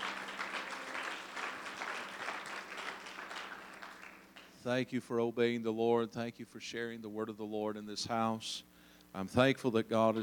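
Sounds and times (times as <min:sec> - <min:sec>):
crowd applause in a room: 0:00.0 - 0:04.5
speech: 0:04.6 - 0:10.2.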